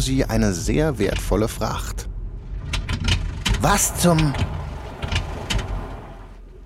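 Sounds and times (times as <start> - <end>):
speech: 0.0 - 2.1, 3.6 - 4.6
car engine sputtering to a stop: 2.1 - 6.6.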